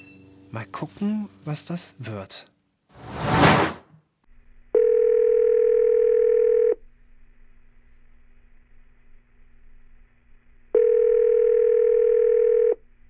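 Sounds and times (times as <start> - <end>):
speech: 0.5 - 2.5
short whoosh: 3.0 - 4.0
telephone line tone of an outgoing call: 4.8 - 6.8, 10.8 - 12.8.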